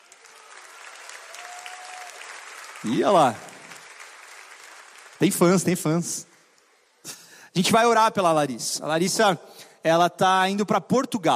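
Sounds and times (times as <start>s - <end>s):
crowd applauding a guest at a gathering: 0.0s - 7.1s
speech: 2.8s - 3.4s, 5.2s - 6.3s, 7.0s - 11.3s.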